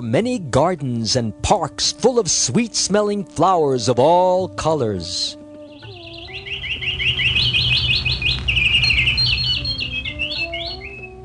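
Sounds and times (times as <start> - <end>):
speech: 0.0 - 5.4
birds chirping with high trills and tweets: 5.0 - 11.2
steady low ambient rumble: 5.9 - 10.9.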